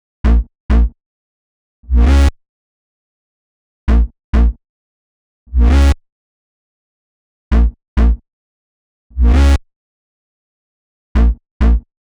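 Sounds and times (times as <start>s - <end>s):
electro synth bass in E minor: 0.3s - 0.9s, 1.9s - 2.3s, 3.9s - 4.6s, 5.6s - 6.0s, 7.5s - 8.2s, 9.2s - 9.6s, 11.2s - 11.8s.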